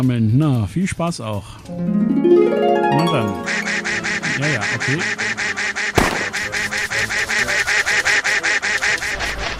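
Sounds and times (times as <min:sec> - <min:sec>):
speech: 0:00.0 - 0:05.4
duck in a video game quacking: 0:03.4 - 0:09.5.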